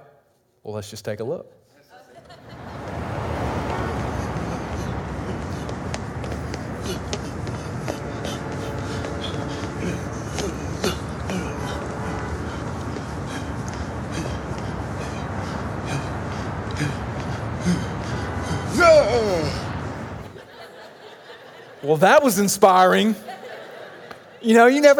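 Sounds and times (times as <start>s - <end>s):
speech: 0.6s - 1.7s, 21.9s - 23.4s, 24.4s - 24.9s
laughter: 2.0s - 24.9s
hard breathing: 2.8s - 20.4s
stomping footsteps running upstairs: 4.8s - 17.4s.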